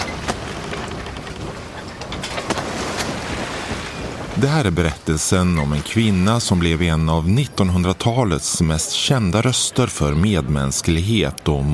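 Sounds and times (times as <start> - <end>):
waves splashing against a boat hull: 0.0 - 6.3
rushing water and wind on open sea: 0.0 - 7.8
speech: 4.4 - 11.7.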